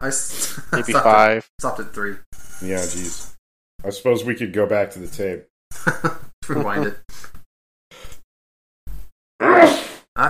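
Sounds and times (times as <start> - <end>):
speech: 0.0 - 7.0
laughter: 0.7 - 1.3, 5.8 - 7.0
loud screaming sneeze: 9.4 - 10.0.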